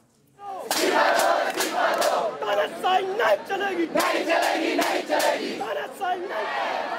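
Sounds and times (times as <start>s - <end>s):
large crowd of protesters chanting outdoors: 0.4s - 6.9s.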